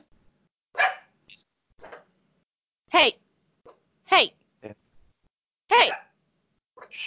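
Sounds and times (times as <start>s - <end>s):
dogs barking back and forth: 0.8s - 1.1s, 5.8s - 6.1s.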